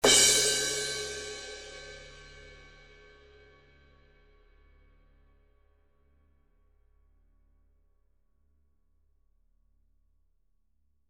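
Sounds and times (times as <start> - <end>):
crash cymbal: 0.0 - 3.7.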